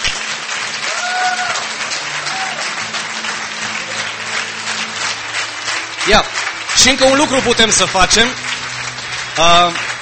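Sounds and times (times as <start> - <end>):
large crowd applauding after a prayer: 0.0 - 10.0
faint whoops and cheers: 0.8 - 2.8
speech: 6.1 - 8.4, 9.4 - 9.8.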